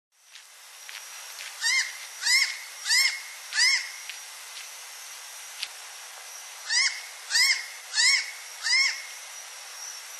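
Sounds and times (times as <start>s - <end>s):
bird calls: 1.6s - 4.1s, 6.6s - 9.2s.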